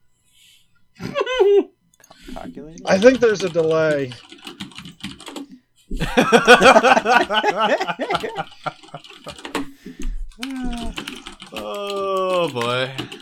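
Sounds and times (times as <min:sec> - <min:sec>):
chuckling laughter: 0:01.0 - 0:01.7, 0:05.9 - 0:11.2
fingers typing on a computer keyboard: 0:02.1 - 0:05.6, 0:06.2 - 0:13.2
speech: 0:02.7 - 0:04.3, 0:05.9 - 0:08.8, 0:12.4 - 0:13.2.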